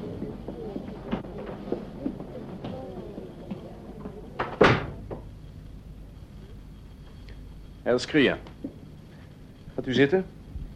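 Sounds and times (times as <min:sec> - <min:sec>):
door behind a curtain thudding shut: 0:04.4 - 0:05.0
speech: 0:07.9 - 0:08.5, 0:09.8 - 0:10.4.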